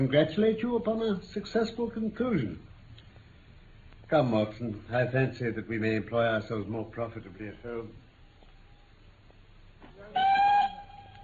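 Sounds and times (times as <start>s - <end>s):
speech: 0.0s - 2.7s, 4.1s - 8.0s
low rumble: 0.0s - 11.2s
steam-train whistle at a station: 10.2s - 11.2s.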